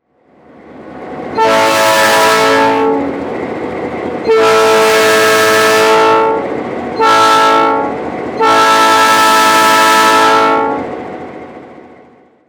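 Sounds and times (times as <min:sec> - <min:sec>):
train horn in the USA: 0:01.4 - 0:03.2, 0:04.2 - 0:10.9.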